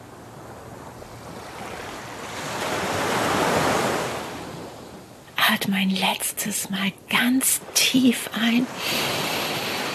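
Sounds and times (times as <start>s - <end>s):
ocean waves surging: 1.2s - 4.7s, 7.1s - 9.9s
speech: 5.7s - 9.4s.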